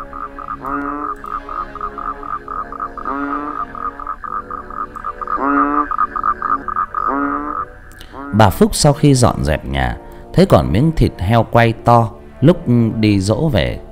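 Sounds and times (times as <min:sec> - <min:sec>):
steady high-pitched chorus at night: 0:00.0 - 0:08.3
toads and frogs croaking at night: 0:00.0 - 0:09.0
speech: 0:00.6 - 0:01.6, 0:08.4 - 0:13.8.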